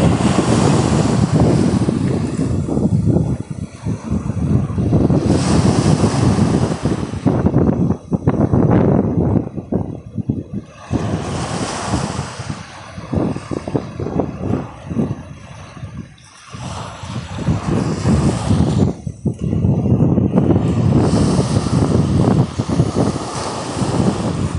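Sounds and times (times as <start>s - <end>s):
gusty wind buffeting the microphone: 0.0s - 24.5s
ocean waves surging in rolling swells: 0.0s - 24.5s.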